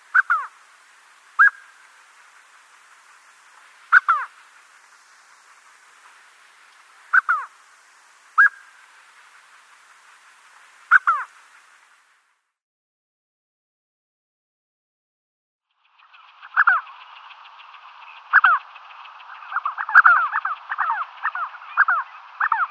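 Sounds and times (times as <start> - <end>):
spotted sandgrouse calling: 0.0 - 7.6, 8.3 - 9.4, 10.8 - 11.7, 16.4 - 17.0, 18.1 - 22.6.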